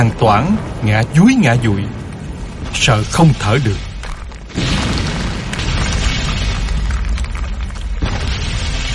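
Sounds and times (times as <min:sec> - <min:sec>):
speech: 0:00.0 - 0:02.0, 0:02.7 - 0:03.9
loud rumbling blasts of artillery shelling: 0:02.6 - 0:08.9.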